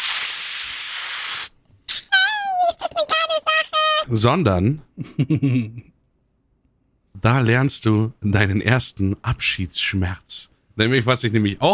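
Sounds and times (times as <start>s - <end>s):
voice imitating the hiss of a helium balloon being opened: 0.0s - 1.5s
high squeaky helium-like voice: 1.9s - 4.1s
speech: 4.1s - 5.9s, 7.2s - 11.7s
laughter: 5.0s - 5.9s.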